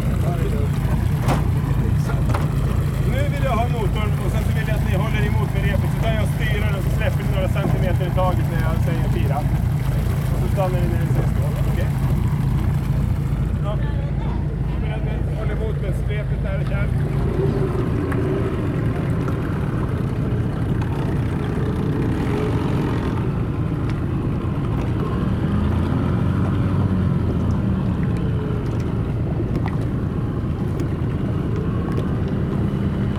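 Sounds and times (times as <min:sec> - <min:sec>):
people talking indistinctly: 0:00.0 - 0:19.6
small motorboat outboard motor droning: 0:00.0 - 0:33.1.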